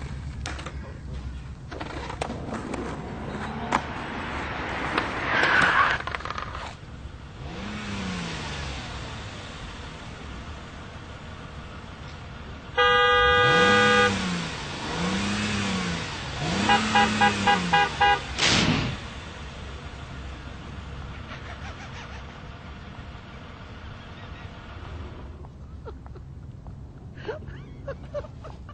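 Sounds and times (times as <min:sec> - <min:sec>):
car engines revving in street traffic: 0:00.0 - 0:25.8
car horns honking in street traffic: 0:12.6 - 0:18.5
laughter: 0:21.1 - 0:22.7, 0:25.6 - 0:26.4, 0:27.2 - 0:28.7.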